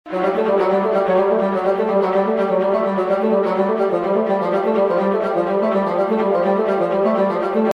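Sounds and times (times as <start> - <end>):
bassoon doubling violas: 0.1 - 7.7.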